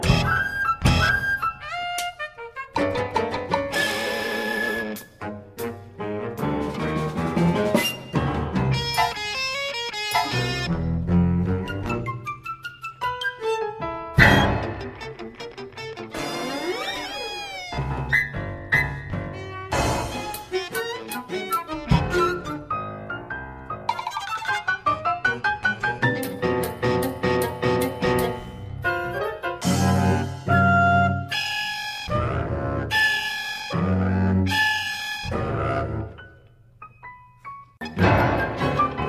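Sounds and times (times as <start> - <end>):
funky cartoon music: 0.0 - 36.3, 37.8 - 39.0.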